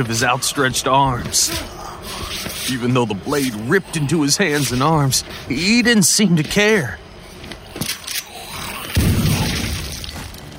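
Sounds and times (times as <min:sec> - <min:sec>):
speech: 0:00.0 - 0:08.0
shotgun blast fired from a doorway: 0:09.0 - 0:10.0.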